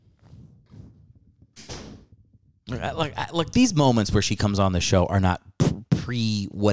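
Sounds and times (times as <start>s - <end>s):
shuffling: 0.0s - 3.6s
door pushed shut with a loud thud: 1.6s - 2.1s
speech: 2.7s - 5.5s, 6.1s - 6.7s.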